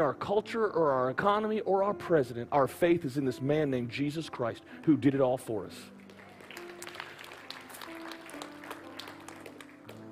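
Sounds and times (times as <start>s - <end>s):
speech: 0.0s - 6.0s
quiet golf-clap style audience applause: 6.0s - 10.1s.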